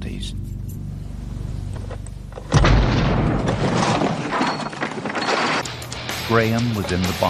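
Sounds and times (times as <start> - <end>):
roaring crackling wash of debris: 2.3 - 5.8
car bomb explosion: 2.5 - 4.4
speech: 6.3 - 7.2.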